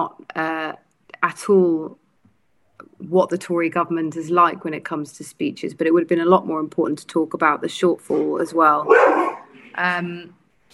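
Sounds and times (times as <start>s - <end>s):
speech: 0.0s - 2.0s, 3.0s - 10.4s
female pet dog barking: 8.8s - 9.6s.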